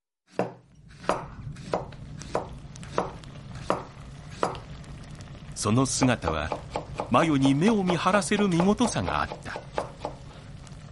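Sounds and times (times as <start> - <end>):
kitchen knife chopping on cutting board: 0.3 - 4.6, 6.0 - 10.2
speech: 5.6 - 9.6.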